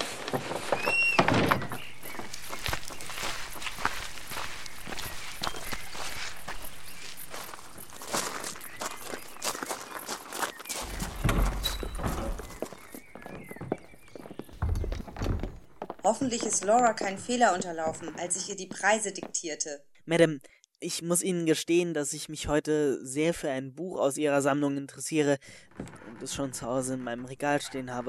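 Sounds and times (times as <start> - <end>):
knocks and clatter: 0.0 - 2.6, 10.8 - 18.2
footsteps walking into a house: 0.0 - 19.6
speech: 16.2 - 28.0.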